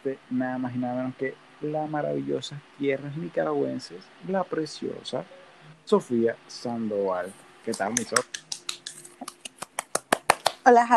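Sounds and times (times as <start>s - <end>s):
speech: 0.0s - 8.4s, 10.6s - 10.9s
hand clapping: 7.1s - 10.6s.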